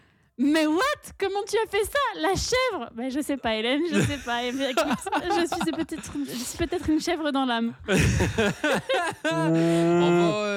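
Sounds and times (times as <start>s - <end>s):
speech: 0.4s - 10.5s
person chuckling: 4.0s - 6.8s, 7.9s - 10.5s
person imitating a cow mooing: 9.3s - 10.5s.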